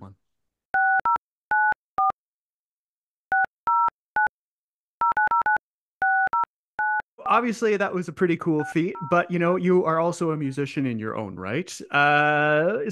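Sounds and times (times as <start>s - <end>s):
touch-tone telephone dialing beeps at a parents' house: 0.8s - 2.2s, 3.3s - 4.3s, 5.0s - 7.1s, 8.6s - 9.2s
speech: 7.3s - 12.9s.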